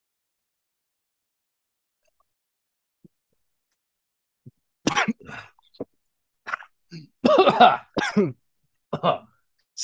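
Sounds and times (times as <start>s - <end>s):
person coughing and sputtering after a liquor shot: 4.8s - 8.4s
person gasping and choking after a liquor shot: 4.9s - 8.3s
speech: 6.9s - 9.8s.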